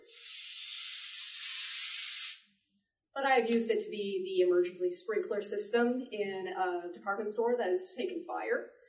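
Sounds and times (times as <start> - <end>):
compressed air sprayed from a can hissing: 0.0 - 2.4
speech: 3.2 - 8.8.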